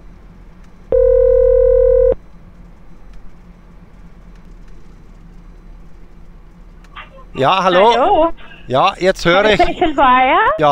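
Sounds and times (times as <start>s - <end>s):
electronic telephone tone as a caller rings in: 0.9s - 2.2s
speech: 7.4s - 10.7s.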